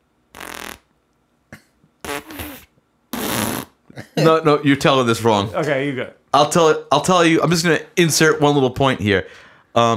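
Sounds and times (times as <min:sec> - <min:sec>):
fart sound effects from phone soundboard app: 0:00.3 - 0:00.9, 0:02.0 - 0:03.8
speech: 0:04.2 - 0:09.9.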